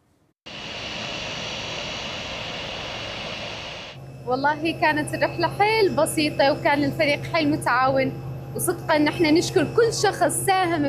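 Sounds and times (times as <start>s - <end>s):
passenger jet engines roaring while landing at airport: 0.5s - 4.0s
speech: 4.3s - 10.8s.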